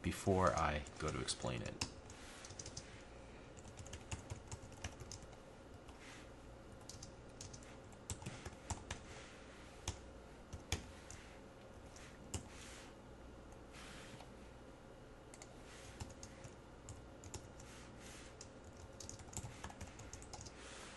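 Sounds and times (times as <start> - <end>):
speech: 0.0 - 1.9
computer keyboard typing programming code: 0.4 - 2.9, 3.6 - 6.0, 6.7 - 9.0, 9.8 - 11.2, 15.3 - 17.7, 18.3 - 20.6.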